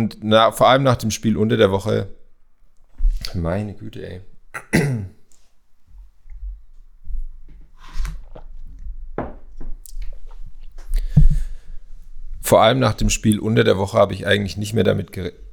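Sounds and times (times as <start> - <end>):
speech: 0.0 - 2.2, 3.3 - 5.2, 12.5 - 15.4
person with a frog in the throat clearing throat: 4.5 - 5.2.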